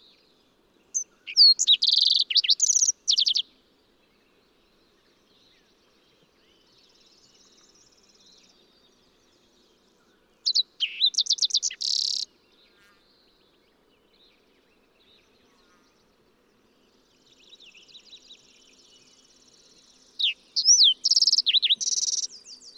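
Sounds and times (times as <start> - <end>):
fox sparrow singing: 0.9 - 3.4, 10.4 - 12.3, 20.2 - 22.7.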